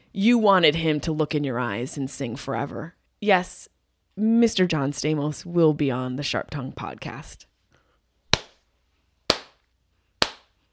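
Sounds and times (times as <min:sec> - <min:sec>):
speech: 0:00.2 - 0:07.5
slow hand clapping: 0:08.3 - 0:08.6, 0:09.3 - 0:09.6, 0:10.2 - 0:10.5.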